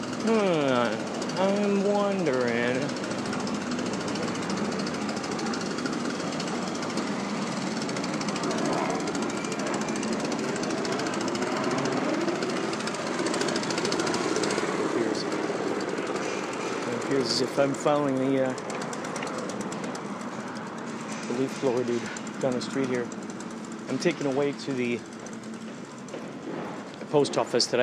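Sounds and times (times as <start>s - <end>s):
construction noise on a street: 0.0s - 27.8s
speech: 0.2s - 3.0s, 17.3s - 18.7s, 21.4s - 23.2s, 23.9s - 25.1s, 27.1s - 27.8s.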